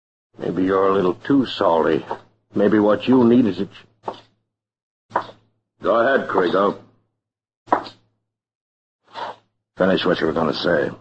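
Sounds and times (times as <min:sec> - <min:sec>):
speech: 0:00.4 - 0:04.2, 0:05.8 - 0:06.8, 0:09.8 - 0:10.9
sharp fleshy slap across the face: 0:04.0 - 0:04.3, 0:05.2 - 0:05.4.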